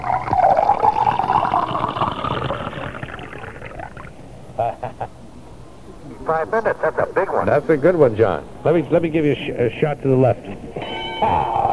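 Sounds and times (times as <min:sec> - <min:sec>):
drink pouring into a glass: 0:00.0 - 0:04.1
liquid glugging: 0:00.0 - 0:04.3
laughter: 0:04.6 - 0:05.3, 0:06.0 - 0:08.0, 0:10.5 - 0:11.7
speech: 0:06.3 - 0:11.6.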